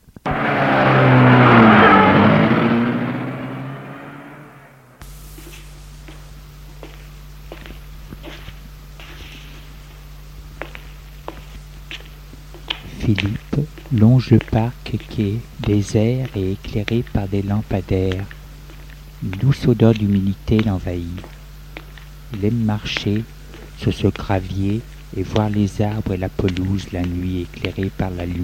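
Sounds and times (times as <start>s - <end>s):
quiet outdoor hum: 0.0s - 28.4s
car engine revving and pulling away: 0.2s - 5.0s
soft footsteps: 5.3s - 28.4s
speech: 14.2s - 18.4s, 19.2s - 21.3s, 22.3s - 28.4s.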